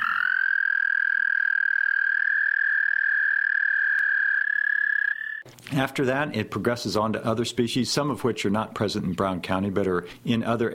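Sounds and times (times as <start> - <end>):
frog calls in a long high trill: 0.0 - 5.4
speech: 5.7 - 10.7.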